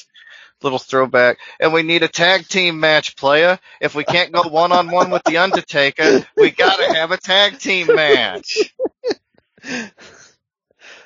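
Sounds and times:
speech: 0.6 - 10.3
laughter: 3.8 - 9.8
person sneezing: 6.0 - 8.8.

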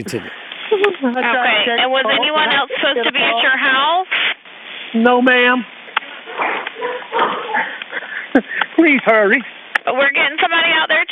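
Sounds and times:
narrow-band emergency phone call: 0.0 - 0.3
speech: 0.0 - 4.2, 4.9 - 5.8, 8.4 - 11.0
dogs barking over an emergency phone call: 6.3 - 7.7.

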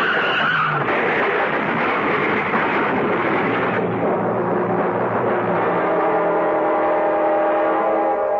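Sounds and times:
car tires skidding on an icy hail-covered road: 0.0 - 2.5
two cars sliding into each other: 0.0 - 5.8
rumbling road noise: 0.0 - 8.3.

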